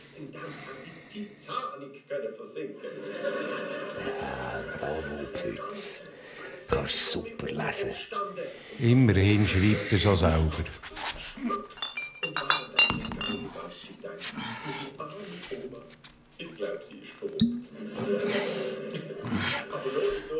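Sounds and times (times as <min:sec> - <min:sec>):
speech: 0:00.2 - 0:06.1, 0:06.7 - 0:11.6
laughter: 0:02.7 - 0:05.6, 0:17.7 - 0:20.3
glasses clinking together in a toast: 0:11.5 - 0:13.7.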